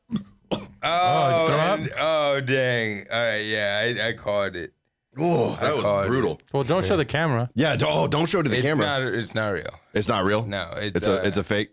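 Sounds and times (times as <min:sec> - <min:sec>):
loud drawn-out croaking burp: 0:00.0 - 0:02.0
speech: 0:00.8 - 0:11.7.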